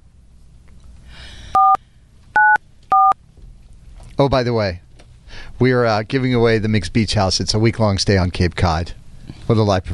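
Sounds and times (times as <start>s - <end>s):
faint hum: 0.0s - 9.9s
telephone keypad dialing tones: 1.6s - 1.8s, 2.4s - 3.2s
speech: 4.2s - 9.9s.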